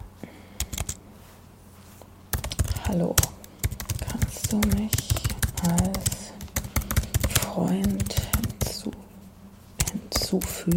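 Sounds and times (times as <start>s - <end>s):
typing messages on a computer keyboard: 0.6s - 1.0s, 2.3s - 8.8s, 9.8s - 10.7s
speech: 2.9s - 3.3s, 4.5s - 6.2s, 7.6s - 8.3s, 10.3s - 10.7s.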